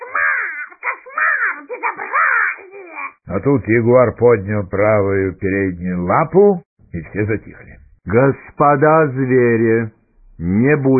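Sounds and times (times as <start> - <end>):
parrot squawking: 0.0 - 3.2
speech: 1.6 - 10.9.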